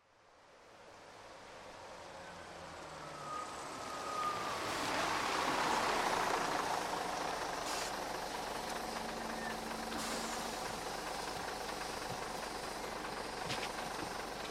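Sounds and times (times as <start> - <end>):
bus engine idling at a bus stop: 3.7 - 14.4.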